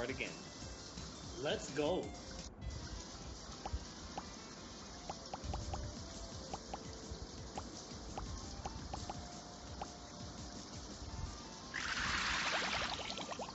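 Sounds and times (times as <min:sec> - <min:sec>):
speech: 0:00.0 - 0:00.6, 0:01.4 - 0:02.2
soft watery background: 0:00.0 - 0:13.5
splashing, hissing rush of water: 0:11.8 - 0:13.5.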